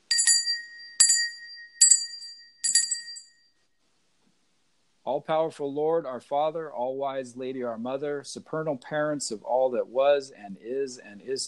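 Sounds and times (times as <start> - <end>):
small bell struck to open a prayer: 0.0 - 3.6
speech: 5.0 - 11.4.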